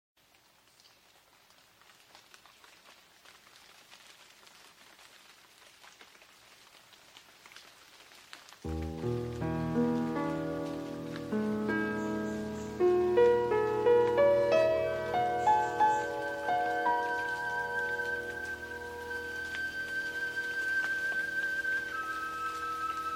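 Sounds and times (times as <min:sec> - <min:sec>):
tropical forest sounds: 0:08.7 - 0:23.1
relaxing bamboo flute music: 0:08.9 - 0:23.1.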